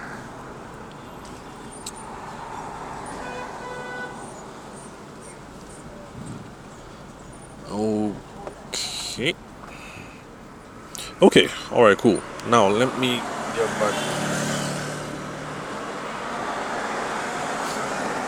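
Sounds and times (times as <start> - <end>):
car rolling forward in slow traffic queue, engine and road noise: 0.0 - 18.2
car horn honks: 3.1 - 4.4, 11.0 - 14.9
speech: 9.2 - 9.5, 11.2 - 14.2.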